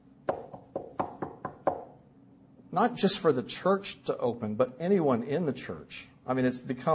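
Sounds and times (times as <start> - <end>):
firm knocking on a wooden door: 0.3 - 2.0
speech: 2.8 - 6.9.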